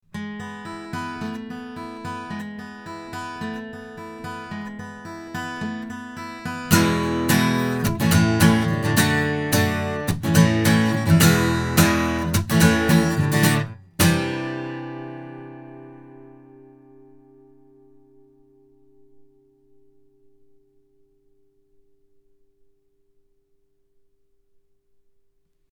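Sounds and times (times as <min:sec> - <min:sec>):
guitar recorded with a condenser microphone: 0:00.0 - 0:22.9.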